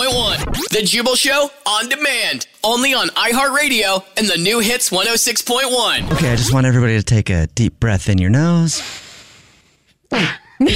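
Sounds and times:
speech: 0.0 - 9.0, 10.1 - 10.7
person sneezing: 10.1 - 10.7.

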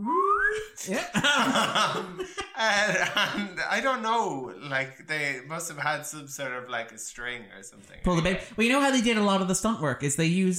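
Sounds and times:
voiced whistle-like falling tone imitating a sound effect: 0.0 - 0.8
speech: 0.6 - 10.5
people laughing: 0.7 - 4.9.

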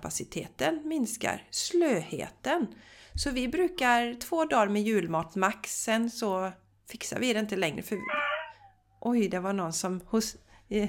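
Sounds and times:
speech: 0.0 - 8.2, 9.0 - 10.8
dog whining: 7.9 - 8.9.

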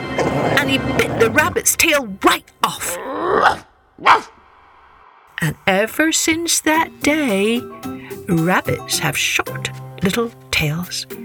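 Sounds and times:
speech: 0.7 - 4.3, 5.4 - 11.2
dog barking: 3.3 - 4.4.

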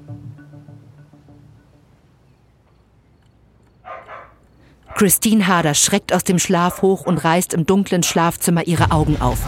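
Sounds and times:
small fox terrier barking: 3.8 - 5.2, 6.6 - 7.4
speech: 5.0 - 9.4.

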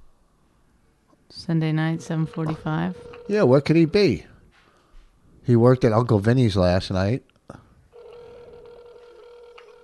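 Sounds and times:
speech: 1.4 - 4.3, 5.5 - 7.6
electronic ringback tone of a phone line on an outgoing call: 1.7 - 4.3, 7.9 - 9.8.

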